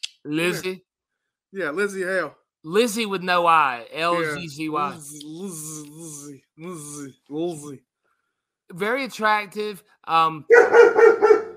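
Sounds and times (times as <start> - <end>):
speech: 0.2 - 0.9, 1.5 - 7.9, 8.7 - 11.1
female dog barking: 10.5 - 11.5.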